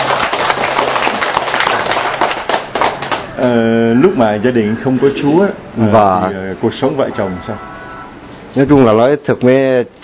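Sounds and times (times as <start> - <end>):
audience applause: 0.0 - 3.4
speech: 3.5 - 7.7, 8.5 - 10.0.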